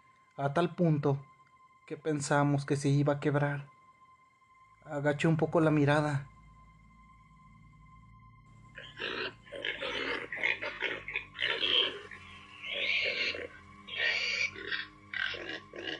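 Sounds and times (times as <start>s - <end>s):
speech: 0.4s - 1.3s, 1.9s - 3.7s, 4.8s - 6.3s
pig grunting: 8.8s - 15.9s.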